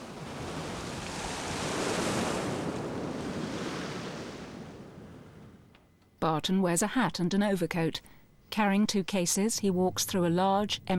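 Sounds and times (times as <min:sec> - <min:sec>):
waves crashing over a rock on a sandy beach: 0:00.0 - 0:04.8
speech: 0:06.2 - 0:10.9.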